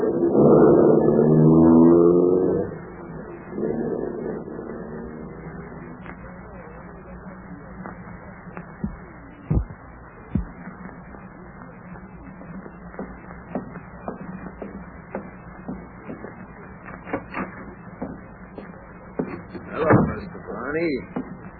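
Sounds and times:
black sedan engine starting, revving and pulling away: 0.0s - 6.1s.

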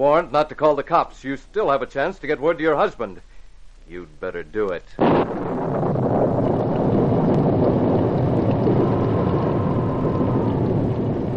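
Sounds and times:
speech: 0.0s - 3.3s, 3.9s - 5.5s
heavy rain pouring during a night thunderstorm: 5.0s - 11.3s
low rolling thunder rumble: 5.0s - 11.3s.

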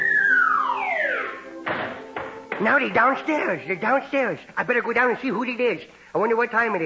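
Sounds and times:
long falling whistle-like slide: 0.0s - 1.4s
speech: 2.6s - 6.8s.

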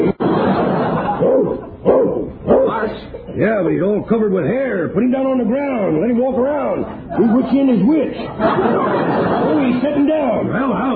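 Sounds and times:
laughter: 0.0s - 1.9s, 7.0s - 10.5s
steady murmur of noise: 0.0s - 10.9s
dog barking: 1.2s - 2.8s
speech: 3.4s - 10.9s.

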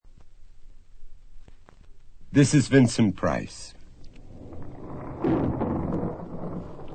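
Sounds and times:
speech: 2.3s - 3.8s
rolling thunder from a distant storm: 3.9s - 6.9s.

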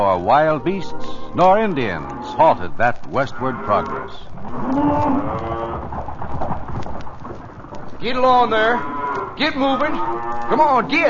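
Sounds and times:
speech: 0.0s - 5.6s, 8.0s - 11.0s
cattle mooing in a long low call: 0.0s - 5.9s, 8.4s - 11.0s
steady broad rumble of a cattle herd: 0.0s - 11.0s.

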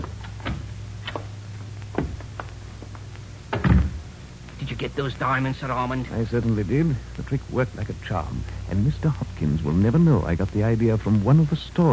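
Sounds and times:
low hum: 0.0s - 11.9s
heavier thud of a door closing: 3.5s - 4.0s
speech: 4.8s - 11.9s.

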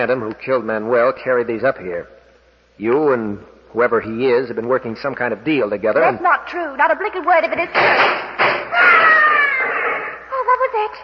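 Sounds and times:
speech: 0.0s - 2.2s, 2.8s - 9.0s, 10.8s - 11.0s
person screaming shrilly: 8.7s - 10.2s.

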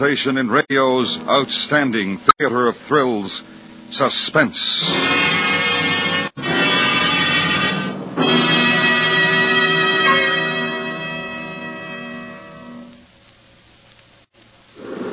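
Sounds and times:
speech: 0.0s - 5.4s
long blaring horn-like tones: 4.9s - 11.1s.

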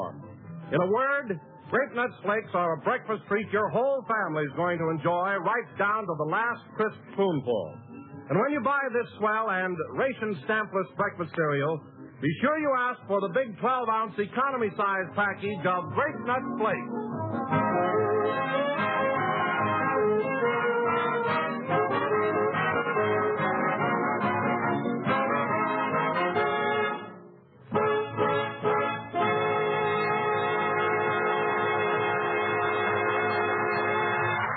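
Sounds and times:
speech: 0.1s - 17.7s
orchestra playing a lively train-like tune: 15.2s - 34.4s.

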